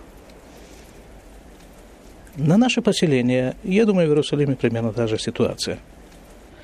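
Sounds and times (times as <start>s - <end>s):
falling snow and sleet: 0.0s - 6.6s
speech: 2.4s - 5.9s.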